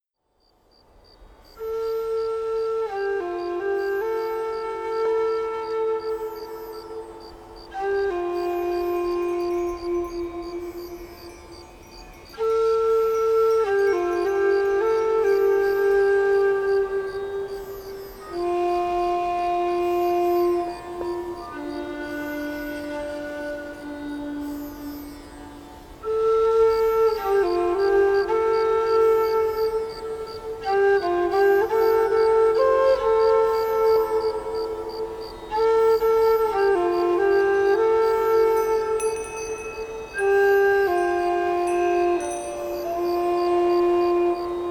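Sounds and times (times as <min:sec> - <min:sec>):
crickets chirping: 0:00.0 - 0:44.7
Native American flute melody: 0:01.6 - 0:44.7.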